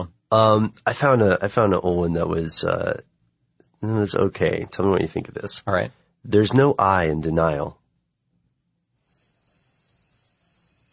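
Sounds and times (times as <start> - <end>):
speech: 0.0 - 3.1, 3.8 - 7.8
crickets chirping in a shrill trill: 8.9 - 10.9.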